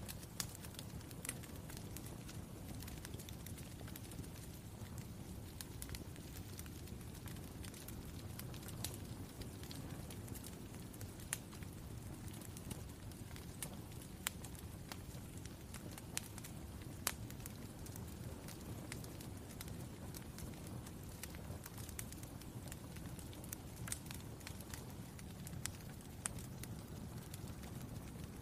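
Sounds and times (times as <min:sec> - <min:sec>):
fireplace crackling: 0:00.0 - 0:28.4
sharp snaps and pops: 0:00.0 - 0:28.4.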